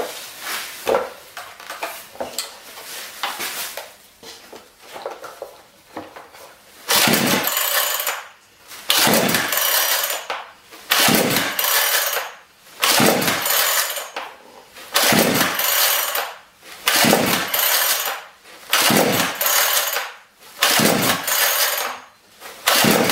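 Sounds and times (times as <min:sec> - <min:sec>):
chainsaw engine pull-start attempts with choke pulled out: 0:06.9 - 0:08.2, 0:08.9 - 0:10.3, 0:10.9 - 0:14.2, 0:14.9 - 0:22.0, 0:22.6 - 0:23.1.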